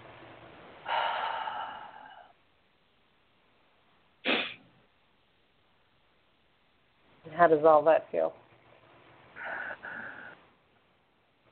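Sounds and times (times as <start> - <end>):
deep breath during a guided relaxation exercise: 0.8 - 2.4, 9.4 - 10.4
short puff of air: 4.2 - 4.6
speech: 7.4 - 8.4.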